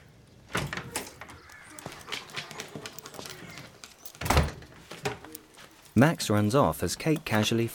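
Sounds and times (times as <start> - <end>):
front door of a house opening with clunks and rattles: 0.5 - 2.0, 4.2 - 5.2
quiet shuffling: 1.1 - 7.7
speech: 6.0 - 7.7.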